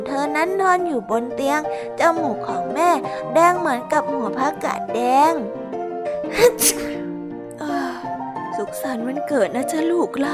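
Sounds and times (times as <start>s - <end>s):
speech: 0.1s - 5.6s, 6.3s - 7.0s, 8.6s - 10.3s
person sneezing: 6.4s - 7.0s
person sniffing: 6.4s - 7.0s.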